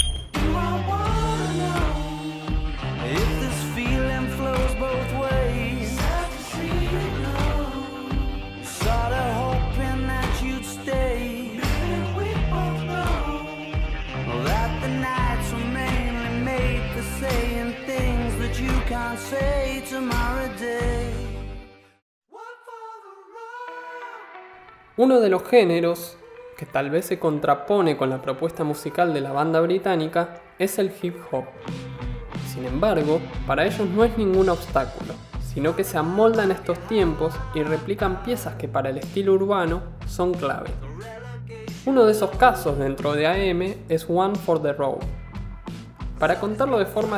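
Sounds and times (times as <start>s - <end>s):
driving rock drums: 0.0s - 21.2s, 31.7s - 41.0s, 41.7s - 43.7s
rock bass: 0.0s - 21.8s, 31.5s - 47.1s
speech: 25.0s - 31.9s, 32.6s - 41.1s, 41.8s - 45.2s, 46.2s - 47.1s.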